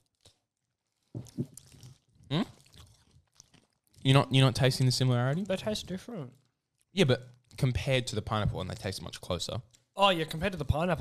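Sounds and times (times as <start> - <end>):
biting and chewing a Violet Crumble chocolate bar: 0.0 - 7.7
speech: 2.3 - 2.5, 4.0 - 10.9.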